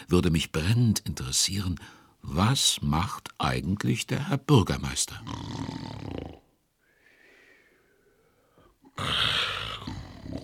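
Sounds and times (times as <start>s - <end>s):
speech: 0.1s - 6.2s
man snoring loudly and raspily during a lunch-break nap: 5.3s - 6.4s, 9.0s - 10.4s.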